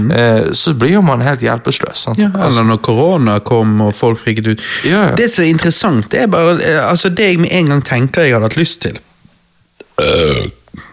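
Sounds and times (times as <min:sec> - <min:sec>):
speech: 0:00.0 - 0:09.1, 0:10.0 - 0:10.9
loud burp: 0:09.9 - 0:10.9.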